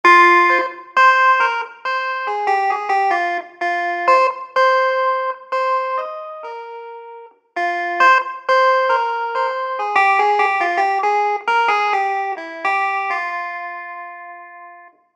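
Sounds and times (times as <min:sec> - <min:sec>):
virginal playing: 0:00.0 - 0:14.9.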